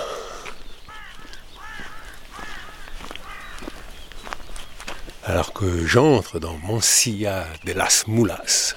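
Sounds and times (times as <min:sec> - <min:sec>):
crow cawing: 0:00.0 - 0:04.0
steady outdoor noise: 0:00.0 - 0:08.7
soft footstep-like clicks: 0:00.4 - 0:05.6
speech: 0:05.3 - 0:08.7.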